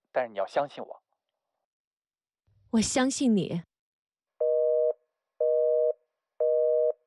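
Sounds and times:
speech: 0:00.2 - 0:01.0, 0:02.7 - 0:03.7
telephone busy tone after hang-up: 0:04.4 - 0:07.0.

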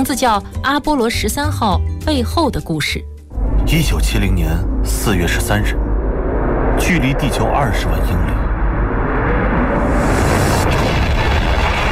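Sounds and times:
speech: 0:00.0 - 0:03.1, 0:03.7 - 0:05.8, 0:06.8 - 0:08.4
explosion tearing apart the fragile hull of a spacecraft in space: 0:03.3 - 0:11.9.

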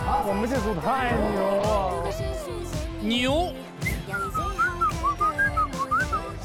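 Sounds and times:
speech: 0:00.1 - 0:04.6
person whistling a wavering sliding tune: 0:03.8 - 0:06.3.

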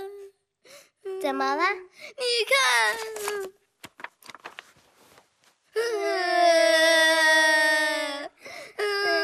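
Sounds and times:
speech: 0:01.2 - 0:03.6
children crying: 0:05.8 - 0:09.2.

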